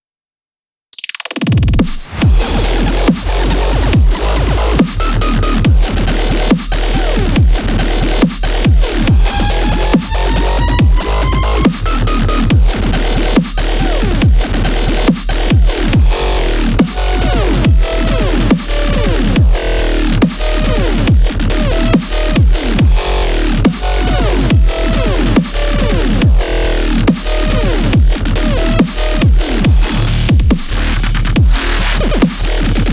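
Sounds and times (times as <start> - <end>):
bass rocket: 1.6 - 32.9.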